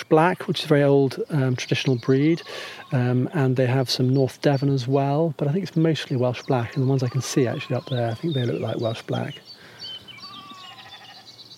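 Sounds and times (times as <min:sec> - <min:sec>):
faint birdsong: 0:00.0 - 0:11.5
speech: 0:00.1 - 0:09.5
several lambs bleating: 0:02.2 - 0:03.4, 0:06.6 - 0:09.2, 0:10.2 - 0:11.3.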